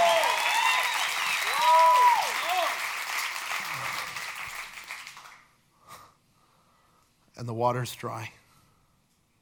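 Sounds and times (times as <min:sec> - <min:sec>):
audience clapping hands: 0:00.0 - 0:05.6
speech: 0:07.4 - 0:08.4.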